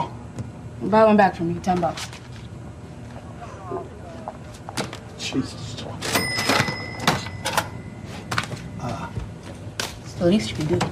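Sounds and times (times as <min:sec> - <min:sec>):
speech: 0:00.8 - 0:02.2, 0:05.3 - 0:05.9, 0:10.2 - 0:10.9
cash register drawer closing: 0:06.0 - 0:07.8
cash register ringing: 0:06.0 - 0:08.8.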